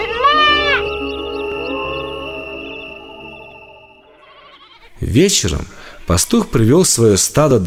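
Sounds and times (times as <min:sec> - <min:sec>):
sheep tangled in thorns bleating plaintively: 0:00.0 - 0:00.9, 0:04.1 - 0:04.9
speech: 0:05.1 - 0:07.6.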